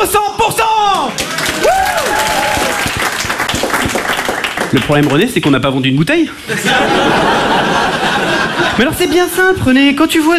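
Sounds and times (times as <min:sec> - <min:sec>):
speech: 0:00.0 - 0:00.3, 0:04.7 - 0:07.8, 0:08.6 - 0:10.3
audience applause: 0:01.1 - 0:05.6
laughter: 0:06.3 - 0:09.6.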